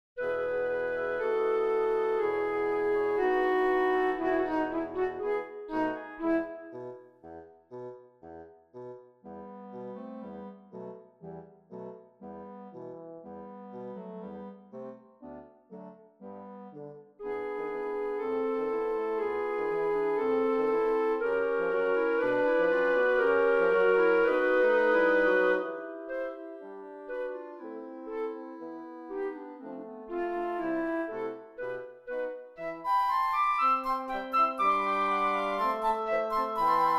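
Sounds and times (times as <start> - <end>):
flute playing: 0.2 - 6.9, 17.3 - 36.9.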